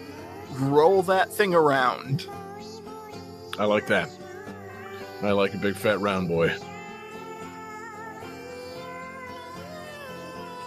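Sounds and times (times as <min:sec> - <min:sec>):
speech: 0:00.6 - 0:02.4, 0:03.6 - 0:04.2, 0:05.2 - 0:06.7
cat meowing: 0:02.1 - 0:10.6.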